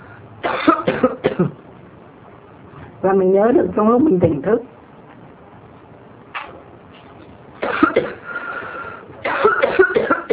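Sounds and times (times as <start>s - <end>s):
person coughing harshly: 0.5s - 1.6s, 7.6s - 8.2s, 9.2s - 10.3s
speech: 0.5s - 1.6s, 3.0s - 4.7s.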